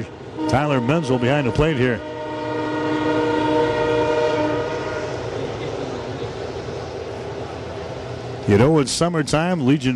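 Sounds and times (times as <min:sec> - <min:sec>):
train horn blast: 0:00.0 - 0:05.8
rumble of passing rail cars: 0:00.0 - 0:09.9
speech: 0:00.4 - 0:02.1, 0:08.5 - 0:09.9.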